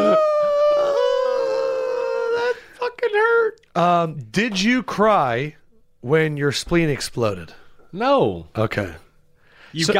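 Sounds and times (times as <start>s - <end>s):
person imitating a whimper: 0.0s - 2.7s
speech: 3.8s - 9.0s, 9.7s - 9.9s.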